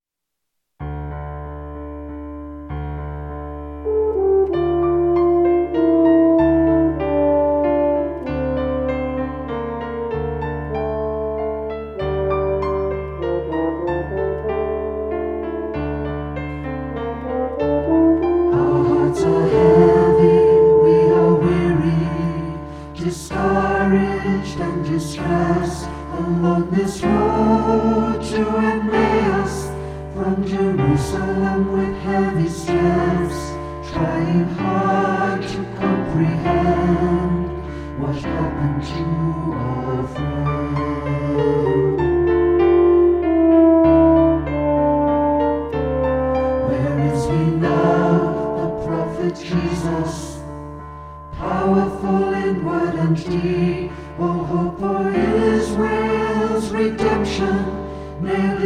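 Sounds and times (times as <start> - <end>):
piano: 0.4 - 58.6
French horn: 3.4 - 58.6
SATB choir singing: 17.7 - 43.8, 46.4 - 58.6.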